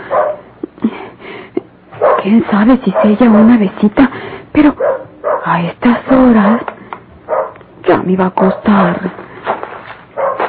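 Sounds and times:
dog barking: 0.0 - 0.5, 2.0 - 3.6, 4.8 - 6.7, 7.3 - 7.6, 10.2 - 10.4
dog yipping: 0.1 - 0.4, 2.0 - 2.3, 4.8 - 5.5, 7.3 - 7.6, 10.2 - 10.4
speech: 2.2 - 4.9, 5.5 - 6.7, 7.9 - 9.2.

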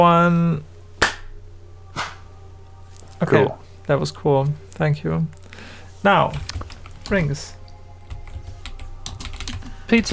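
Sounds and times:
speech: 0.0 - 0.7, 3.2 - 7.6, 9.9 - 10.1
faint steady low hum: 0.0 - 10.1
hand claps for audio sync: 1.0 - 1.3.

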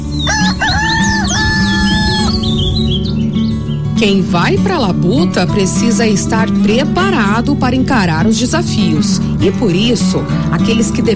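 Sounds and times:
squawky bird calls: 0.1 - 3.1
rooster crowing: 0.2 - 2.5
steady low rumble: 0.6 - 3.3
speech: 4.0 - 11.1.

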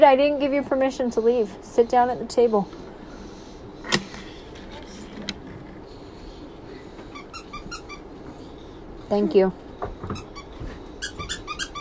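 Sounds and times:
speech: 0.0 - 2.9, 9.1 - 10.3
high-pitched squeaks: 10.2 - 11.7.

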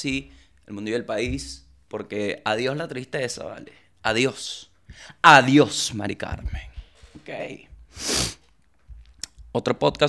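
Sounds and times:
speech: 0.0 - 8.4, 9.5 - 10.0
person sneezing: 8.0 - 8.4.

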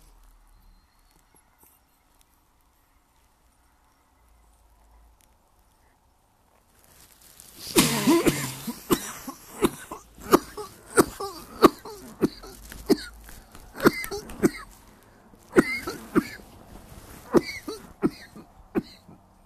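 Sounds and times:
person clearing throat: 7.6 - 14.8, 15.5 - 16.4, 17.3 - 19.2
person coughing: 7.6 - 14.8, 15.5 - 16.5, 17.1 - 19.2.

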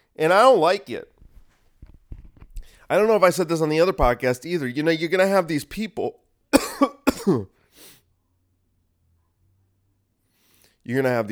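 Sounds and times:
speech: 0.2 - 1.1, 2.9 - 7.9, 10.9 - 11.3
person coughing: 6.6 - 7.5
rough throat clearing: 6.6 - 7.5.

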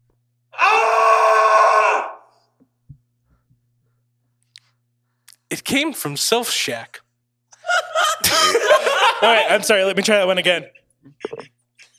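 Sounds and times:
person performing a scream: 0.6 - 2.3
speech: 5.6 - 7.0, 9.2 - 11.5
laughter: 7.5 - 9.9, 10.6 - 11.9.

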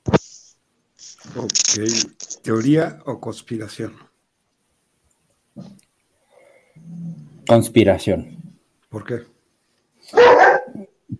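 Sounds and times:
speech: 1.2 - 4.1, 7.5 - 9.4
dog barking: 10.1 - 10.9
faint yip: 10.1 - 10.9.

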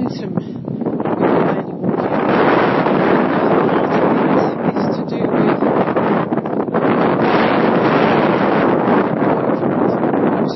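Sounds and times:
wind buffeting a microphone outdoors on a walk: 0.0 - 10.5.

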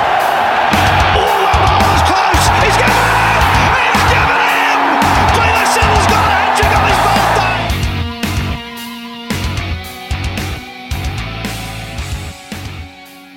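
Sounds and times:
cricket stadium crowd roaring and cheering: 0.0 - 8.9
rhythmic music: 0.0 - 13.3.

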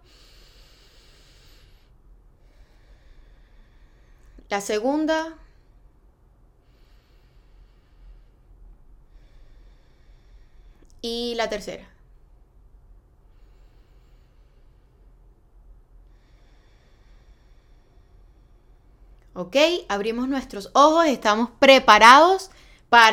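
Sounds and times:
slow deep breaths in and out through the nose: 0.0 - 4.5, 5.4 - 10.9, 13.2 - 19.3
speech: 4.5 - 5.4, 11.0 - 11.9, 19.4 - 23.1.

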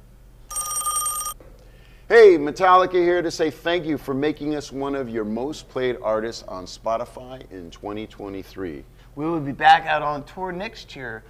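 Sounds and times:
telephone ringing: 0.5 - 1.4
speech: 2.1 - 11.2.

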